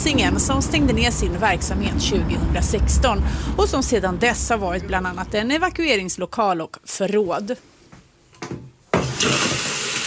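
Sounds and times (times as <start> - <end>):
speech: 0.0 - 7.7, 9.2 - 9.7
toilet flushing in a closed vandalized school building in Gothenburg: 9.0 - 10.0.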